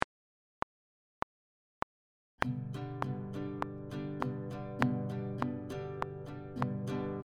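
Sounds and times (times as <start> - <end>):
easy strumming pattern on guitar: 2.4 - 7.2.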